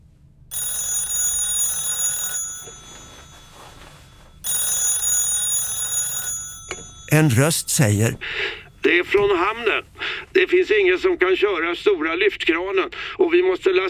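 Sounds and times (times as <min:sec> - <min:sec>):
telephone ringing with a loud bright bell: 0:00.5 - 0:08.7
speech: 0:07.1 - 0:13.8.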